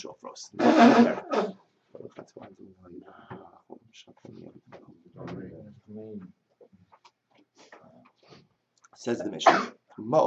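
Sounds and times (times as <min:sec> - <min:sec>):
speech: 0:00.0 - 0:06.4, 0:09.0 - 0:10.2
sneeze: 0:09.4 - 0:09.8.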